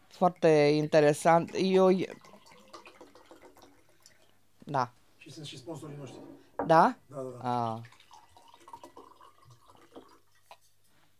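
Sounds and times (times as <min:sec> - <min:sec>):
speech: 0:00.2 - 0:02.3, 0:04.7 - 0:08.0
water pouring in splashy glugs: 0:00.2 - 0:04.4, 0:07.1 - 0:10.7.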